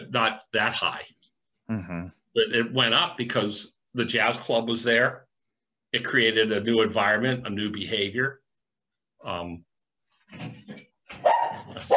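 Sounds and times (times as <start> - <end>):
speech: 0.1 - 5.2, 5.9 - 8.4, 9.2 - 9.7, 10.3 - 11.9
dog barking at mail delivery: 11.2 - 11.9.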